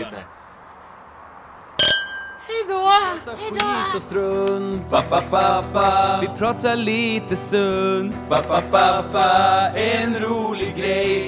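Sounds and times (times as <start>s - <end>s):
speech: 0.0s - 0.4s, 2.4s - 11.2s
glasses clinking in a drinking toast: 1.8s - 2.7s.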